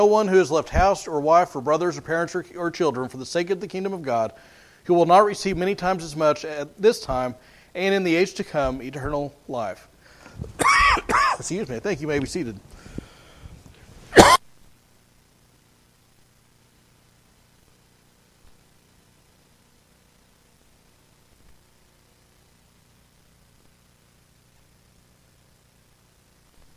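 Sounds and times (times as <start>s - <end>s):
speech: 0.0s - 12.8s
faint room noise: 0.0s - 26.7s
single sharp cough: 10.6s - 11.5s, 14.1s - 14.4s.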